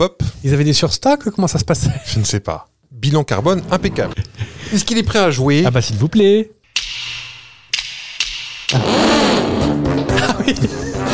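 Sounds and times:
speech: 0.0s - 6.6s, 10.5s - 10.8s
sharp clicks: 6.7s - 8.9s
voice in a studio imitating a motorcycle engine revving: 8.7s - 9.7s
laughter: 10.1s - 11.1s.

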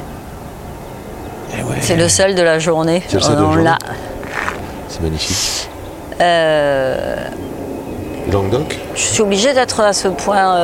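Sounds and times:
airplane taking off: 0.4s - 10.6s
speech: 1.6s - 4.2s, 4.9s - 10.6s.

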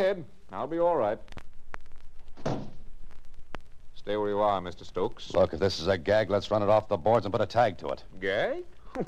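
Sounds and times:
speech: 0.0s - 1.4s, 4.0s - 9.0s
heavy solid door shutting: 2.4s - 2.8s.

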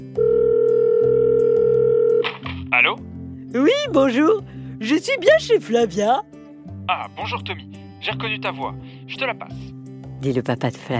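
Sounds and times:
telephone tone as a call is placed: 0.1s - 2.2s
speech: 2.8s - 6.3s, 6.9s - 10.9s.

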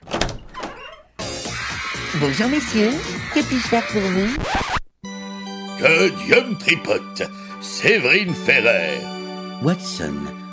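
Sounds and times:
door opening with mechanical clunks and rattles: 0.0s - 1.1s
laughter: 1.4s - 4.4s
speech: 2.2s - 4.7s, 5.8s - 10.4s.

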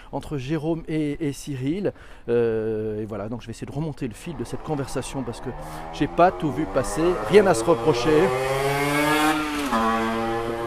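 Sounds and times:
speech: 0.1s - 9.0s
motorcycle passing by outside: 4.2s - 10.6s.

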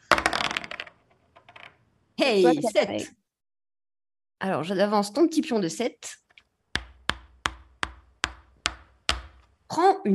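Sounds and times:
dice for a board game clattering across a hard surface: 0.0s - 1.8s
speech: 2.2s - 3.2s, 4.4s - 6.2s, 9.8s - 10.1s.

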